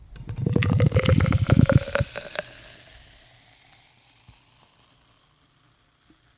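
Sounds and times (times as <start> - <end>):
fizzy beer from a can pouring into a glass: 0.2 - 2.9.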